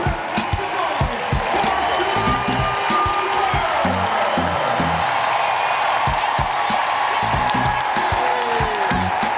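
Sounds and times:
big arena crowd cheering and whooping in a standing ovation: 0.0s - 9.3s.

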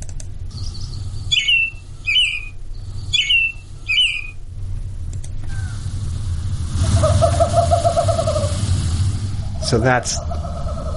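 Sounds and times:
steady low rumble: 0.0s - 10.9s
birds calling: 0.4s - 4.5s, 6.7s - 10.9s
western screech owl hooting: 0.5s - 4.4s, 5.5s - 5.9s, 6.8s - 8.7s, 9.3s - 10.9s
speech: 9.7s - 10.4s.

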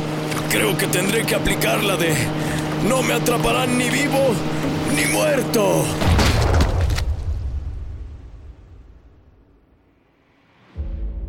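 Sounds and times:
boat motor droning as the boat starts off: 0.0s - 6.0s
speech: 0.5s - 6.1s
loud gunshot blast fired at a man fleeing into the sea: 6.0s - 8.1s.

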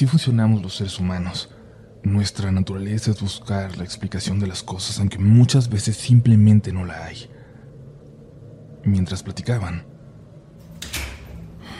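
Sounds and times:
speech: 0.0s - 7.4s, 8.8s - 9.9s
distant door slamming shut: 10.6s - 11.7s.

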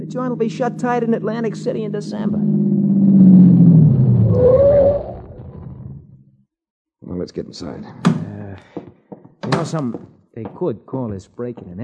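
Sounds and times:
car engine rumbling as the car slows: 0.0s - 6.2s
speech: 0.1s - 5.1s, 7.2s - 8.8s, 9.5s - 11.8s
high whine: 2.1s - 6.0s.

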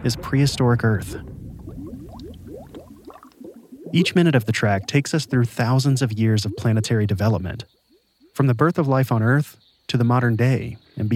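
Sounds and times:
speech: 0.0s - 1.3s, 3.9s - 7.8s, 8.4s - 11.1s
thick gloopy bubbling of lava: 0.0s - 7.6s
dense rumbling bed: 0.0s - 7.7s.

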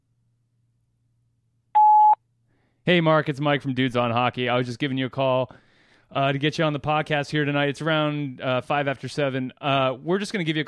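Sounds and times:
voicemail answering machine electronic beep: 1.8s - 2.2s
speech: 2.9s - 10.6s.

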